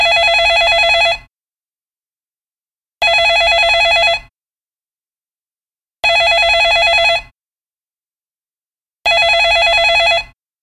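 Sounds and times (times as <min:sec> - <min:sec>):
telephone bell ringing: 0:00.0 - 0:01.3, 0:03.0 - 0:04.3, 0:06.0 - 0:07.3, 0:09.1 - 0:10.4.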